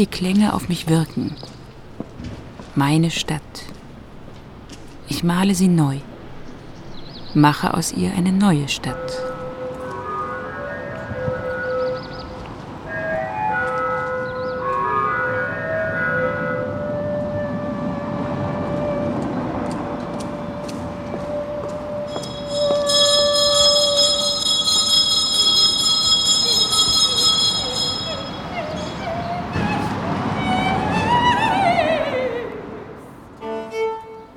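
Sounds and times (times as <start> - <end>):
speech: 0.0 - 1.5, 2.8 - 3.8, 5.1 - 6.1, 7.3 - 9.3
streetcar rumbling past on the outskirts of Cologne: 0.0 - 34.3
streetcar bell ringing: 5.0 - 31.8
streetcar wheels whining and squealing on the rails: 8.8 - 33.2.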